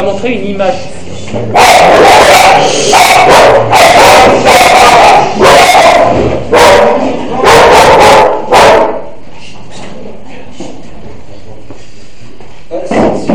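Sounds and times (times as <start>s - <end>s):
speech: 0.0s - 5.4s
dogs barking at each other: 1.5s - 9.2s.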